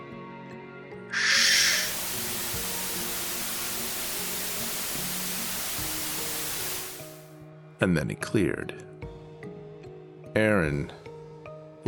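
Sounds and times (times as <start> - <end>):
speaker hissing with broadband white-noise static: 1.2 - 7.2
speech: 7.8 - 8.9, 10.4 - 11.0.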